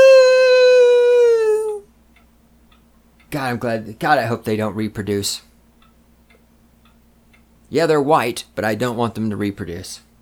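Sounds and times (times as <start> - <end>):
neighbor's dog howling: 0.0 - 1.8
speech: 3.4 - 5.5, 7.7 - 10.1.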